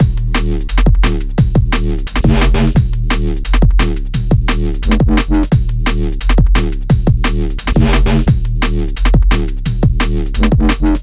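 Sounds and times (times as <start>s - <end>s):
drum and bass music: 0.0s - 11.0s.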